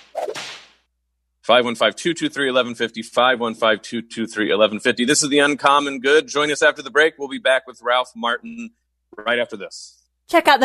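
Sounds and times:
whip-crack sound effect with whooshing swish: 0.0s - 0.8s
speech: 1.5s - 10.6s.

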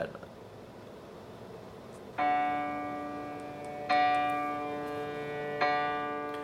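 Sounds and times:
speech: 0.0s - 0.2s
faint hiss: 0.0s - 6.4s
single piano note played in Logic Pro: 2.2s - 6.4s.

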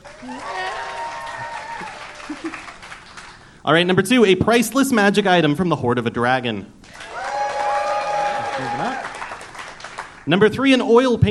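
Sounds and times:
whoops and cheering voices: 0.0s - 2.7s, 6.9s - 9.3s
crowd clapping to vote for a story prompt: 0.0s - 3.6s, 6.8s - 10.3s
speech: 0.2s - 0.6s, 3.6s - 6.8s, 10.3s - 11.2s.

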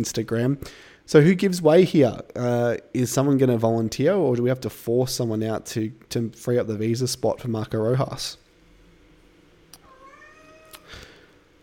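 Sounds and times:
speech: 0.0s - 8.4s
cat meowing: 9.8s - 11.1s.

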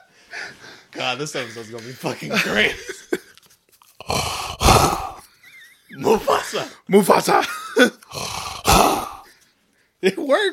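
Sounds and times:
speech: 0.9s - 3.0s, 6.1s - 8.2s, 10.0s - 10.5s
laughter: 1.2s - 3.4s
person growling into a cardboard paper towel tube: 4.0s - 5.2s, 8.1s - 9.3s.

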